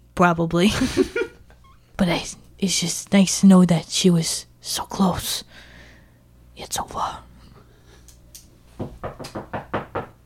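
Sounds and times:
speech: 0.2s - 1.2s, 2.0s - 5.7s, 6.6s - 7.3s
firm knocking on a door: 8.8s - 10.2s.

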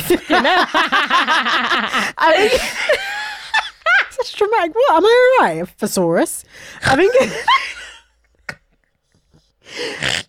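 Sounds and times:
speech: 0.1s - 3.1s, 4.2s - 7.8s, 9.7s - 10.2s
person snorting: 8.4s - 10.2s.

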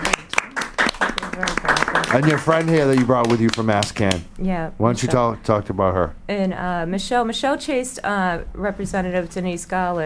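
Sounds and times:
sharp hand claps: 0.0s - 4.3s
speech: 2.1s - 10.0s.

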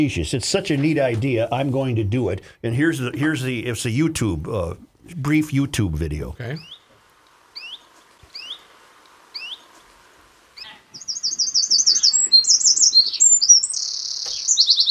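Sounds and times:
speech: 0.0s - 6.8s
sweeping bird chirps in a played video: 6.5s - 9.9s, 10.6s - 14.9s.

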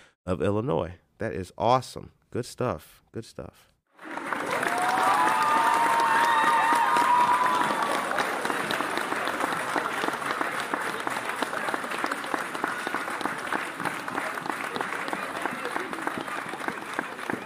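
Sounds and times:
speech: 0.2s - 3.7s
crowd applause from many hands: 3.9s - 17.4s
faint cheering: 4.0s - 17.4s.

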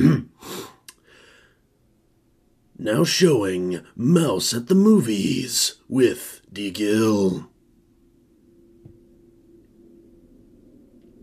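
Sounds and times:
person clearing throat: 0.0s - 0.4s
breathy exhale: 0.4s - 1.6s
click: 0.8s - 1.0s
speech: 2.8s - 7.5s.

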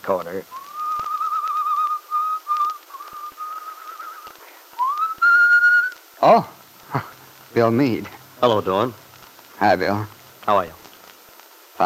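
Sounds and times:
speech: 0.0s - 0.6s, 6.2s - 6.5s, 7.6s - 9.0s, 9.6s - 10.8s
man whistling a tune on a winter day: 0.5s - 6.0s.

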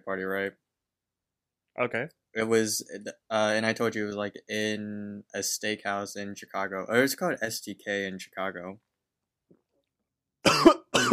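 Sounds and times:
speech: 0.0s - 0.6s, 1.8s - 8.9s
person coughing after choking on a drink: 10.4s - 11.1s.

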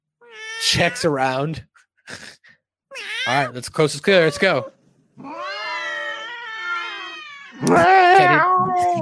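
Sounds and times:
cats caterwauling while mating: 0.2s - 1.1s, 2.9s - 8.9s
speech: 0.6s - 2.4s, 3.0s - 5.4s, 7.6s - 8.9s.

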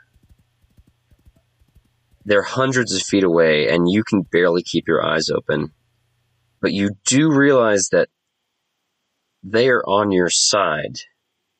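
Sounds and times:
several horses galloping hooves: 0.0s - 5.0s
speech: 2.3s - 5.8s, 6.6s - 8.2s, 9.4s - 11.1s.

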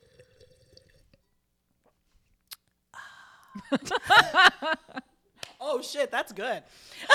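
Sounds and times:
wine pouring into a glass: 0.0s - 1.2s
speech: 3.6s - 4.9s, 5.7s - 7.1s
laughter: 3.6s - 5.1s.

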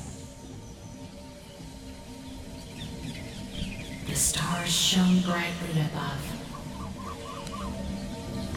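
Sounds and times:
birds chirping and calling in a night forest: 0.0s - 8.5s
speech: 4.2s - 6.4s.

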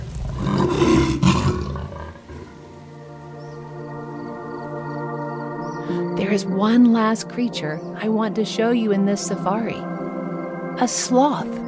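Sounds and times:
tiger roaring: 0.1s - 2.7s
speech: 6.3s - 10.0s, 10.8s - 11.6s.

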